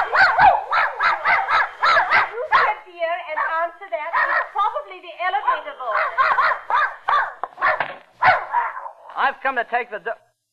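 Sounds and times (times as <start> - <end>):
dog barking with sharp yappy barks: 0.0 - 2.8, 3.4 - 4.7, 5.5 - 9.0
dog whining: 0.0 - 2.8, 5.9 - 9.0
speech: 9.4 - 10.2.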